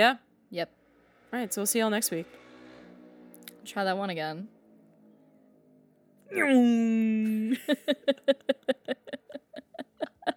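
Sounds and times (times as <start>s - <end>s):
speech: 0.0s - 2.4s, 3.6s - 4.6s, 6.3s - 8.5s
voice imitating a motorcycle leaving: 6.3s - 10.0s
laughter: 7.3s - 10.3s.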